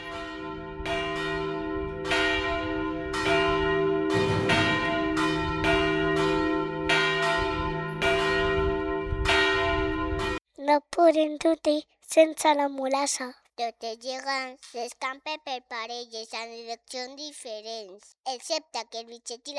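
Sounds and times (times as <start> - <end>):
church bells ringing for a festive procession: 0.0 - 10.4
speech: 11.0 - 19.5.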